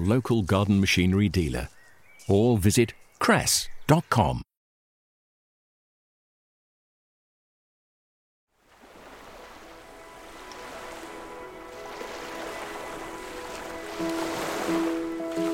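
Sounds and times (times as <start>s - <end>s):
speech: 0.0s - 4.5s
steady stream of flowing water: 8.6s - 15.5s.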